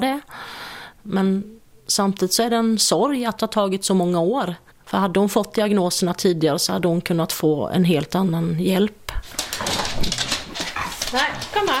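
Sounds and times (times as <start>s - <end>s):
speech: 1.0s - 10.3s, 11.1s - 11.7s
two family dogs scuffling in a kitchen: 9.1s - 11.7s
two family dogs whining and yelping coming into a kitchen: 9.5s - 11.7s.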